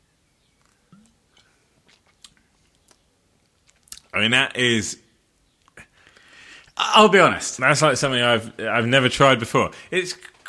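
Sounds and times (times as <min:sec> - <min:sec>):
soft wet mouth clicks while sipping cucumber-infused ale: 0:00.9 - 0:03.0, 0:03.7 - 0:04.1
speech: 0:04.2 - 0:05.0, 0:07.0 - 0:10.3.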